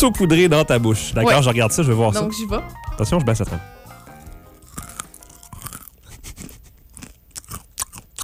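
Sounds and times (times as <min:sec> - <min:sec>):
speech: 0:00.0 - 0:03.8
crunchy chewing of a snack mix with dark chocolate: 0:04.0 - 0:08.2.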